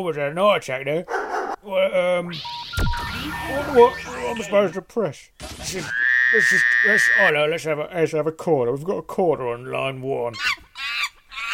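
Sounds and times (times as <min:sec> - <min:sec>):
speech: 0:00.0 - 0:10.6
monkey sound effect screeching: 0:05.8 - 0:07.4, 0:10.4 - 0:11.5.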